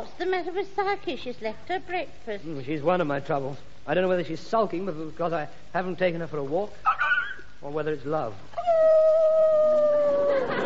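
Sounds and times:
speech: 0.2s - 8.9s
dog howling: 8.6s - 10.5s.

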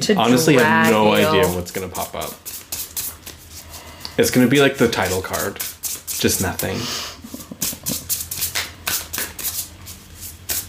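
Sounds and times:
speech: 0.1s - 2.6s, 4.2s - 7.1s
cards shuffling: 2.3s - 3.7s, 5.0s - 6.7s, 7.6s - 10.6s.

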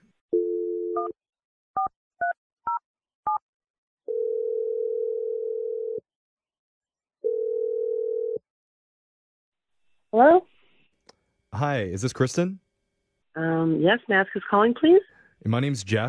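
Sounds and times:
telephone dial tone: 0.3s - 1.2s, 4.1s - 6.0s, 7.2s - 8.4s
speech: 1.0s - 2.4s, 10.1s - 10.5s, 11.6s - 12.6s, 13.4s - 16.0s
telephone ringing tones: 4.1s - 6.0s, 7.2s - 8.4s.

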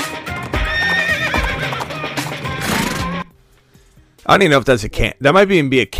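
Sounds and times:
galloping horse hoofbeats: 0.2s - 3.3s
horse neighing: 0.4s - 3.3s
speech: 4.3s - 5.9s.

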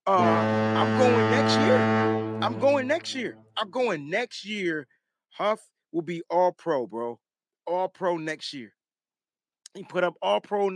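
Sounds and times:
speech: 0.0s - 8.8s, 9.8s - 10.7s
loud low foghorn blast: 0.1s - 3.5s.

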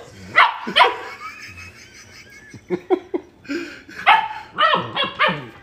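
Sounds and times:
laughter: 0.2s - 4.2s
dog barking: 0.4s - 1.2s, 4.0s - 5.6s
dog whining: 4.1s - 5.6s.

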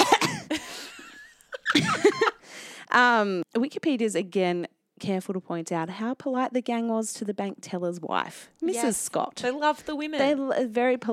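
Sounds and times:
person coughing: 0.0s - 0.8s
person laughing: 0.0s - 2.4s
speech: 2.9s - 11.1s.

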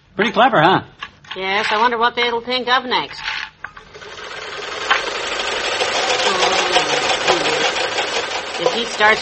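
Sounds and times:
speech: 0.2s - 3.3s, 8.7s - 9.2s
sewing machine winding thread onto a bobbin with its built-in winder: 3.8s - 9.2s.

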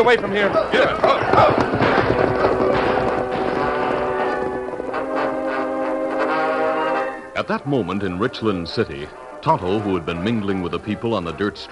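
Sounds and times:
speech: 0.0s - 2.2s, 7.4s - 11.7s
hooves of a ridden white horse galloping away: 0.0s - 6.4s.

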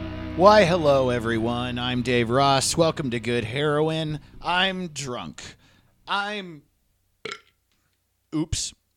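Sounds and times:
speech: 0.4s - 6.7s, 7.3s - 7.5s, 8.3s - 8.8s
loud throaty burp: 7.3s - 7.6s.

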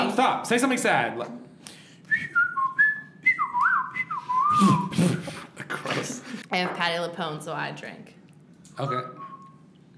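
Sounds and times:
speech: 0.2s - 1.5s, 4.6s - 5.4s, 6.0s - 8.2s, 8.8s - 9.2s
person whistling a short wavering tune: 2.1s - 5.1s, 8.8s - 9.9s.

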